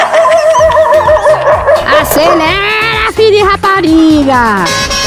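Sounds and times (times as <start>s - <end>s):
hungry dogs barking and yelping in a high whiny chorus: 0.0s - 2.8s
speech: 3.2s - 4.9s.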